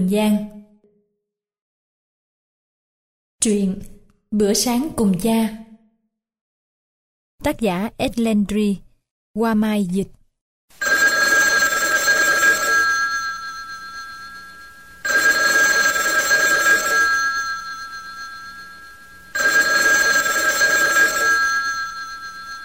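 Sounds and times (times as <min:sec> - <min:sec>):
speech: 0:00.0 - 0:00.6, 0:03.4 - 0:05.6, 0:07.4 - 0:08.8, 0:09.4 - 0:10.8
telephone ringing: 0:10.8 - 0:22.6.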